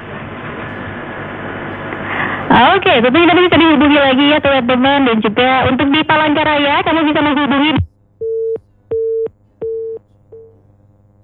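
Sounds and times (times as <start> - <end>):
speech: 2.5 - 7.9
telephone busy tone after a line cuts off: 7.7 - 10.6.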